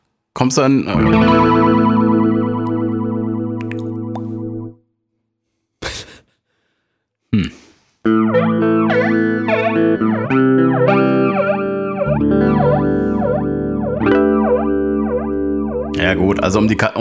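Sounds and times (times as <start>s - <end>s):
speech: 0.4s - 2.0s, 16.5s - 16.9s
sustained electric guitar chords through a flanger pedal with feedback fully up: 1.0s - 4.8s, 8.1s - 16.7s.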